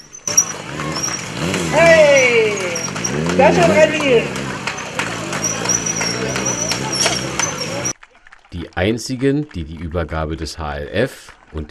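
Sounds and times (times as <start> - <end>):
motorcycle engine revving during stunt show: 0.0 - 8.0
murmur of voices and crowd noise: 0.0 - 8.0
speech: 3.4 - 4.4, 8.8 - 11.6.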